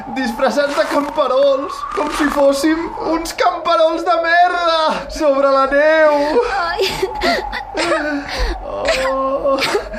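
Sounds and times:
speech: 0:00.2 - 0:09.9
person sobbing and whimpering: 0:06.1 - 0:09.9.

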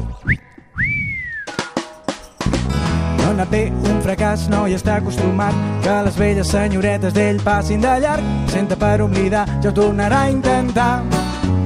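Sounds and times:
loud whistle: 0:00.2 - 0:01.9
percussive music: 0:00.3 - 0:11.6
speech: 0:03.4 - 0:11.3.

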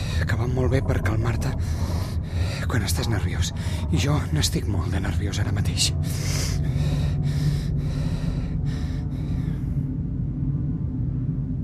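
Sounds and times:
deep breathing in and out: 0:00.0 - 0:00.4, 0:01.3 - 0:04.4, 0:05.9 - 0:10.4
steady low hum: 0:00.0 - 0:11.6
speech: 0:00.2 - 0:02.0, 0:02.6 - 0:07.0.

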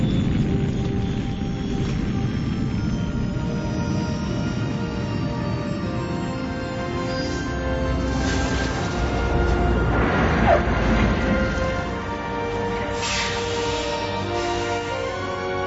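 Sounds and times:
sci-fi spaceship engine roar landing: 0:00.0 - 0:15.5
whooshing swells: 0:06.8 - 0:15.0.

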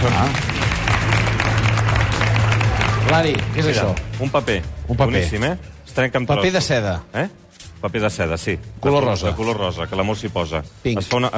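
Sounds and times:
speech: 0:00.0 - 0:01.5, 0:03.1 - 0:11.3
audience applause for a contestant during a game segment: 0:00.0 - 0:04.1.

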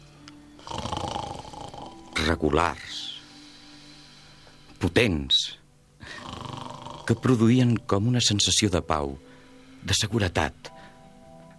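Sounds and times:
deep cavernous rasping snore: 0:00.6 - 0:02.3, 0:06.0 - 0:07.4
speech: 0:02.3 - 0:03.1, 0:04.9 - 0:05.6, 0:07.1 - 0:10.7.

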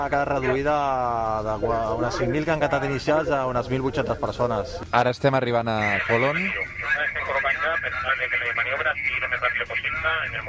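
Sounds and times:
speech: 0:00.0 - 0:07.1, 0:08.1 - 0:10.4
police radio voice chatter: 0:05.7 - 0:10.4.

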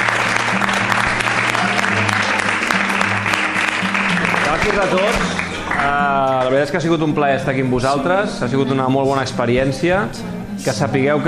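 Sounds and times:
audience applause: 0:00.0 - 0:06.6
speech: 0:04.7 - 0:11.2.

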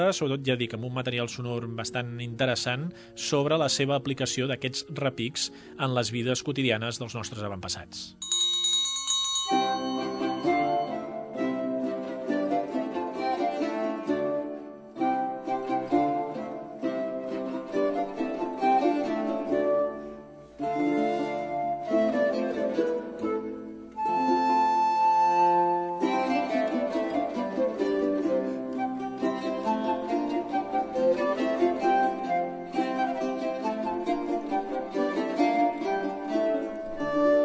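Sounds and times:
speech: 0:00.0 - 0:08.3
flutes playing a flowing melody: 0:09.6 - 0:37.4.

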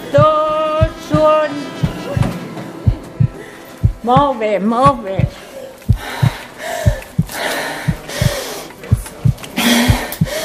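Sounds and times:
regular low thumps: 0:00.0 - 0:10.4
speech: 0:04.0 - 0:05.4
rapid panting breaths of an elite water polo athlete running: 0:05.3 - 0:10.4.

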